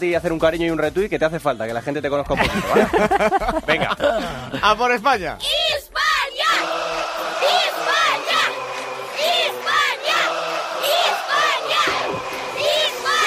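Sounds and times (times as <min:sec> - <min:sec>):
speech: 0:00.0 - 0:06.0
laughter: 0:02.3 - 0:04.8
crowd of children shouting and cheering in Krasnodar: 0:05.4 - 0:13.2.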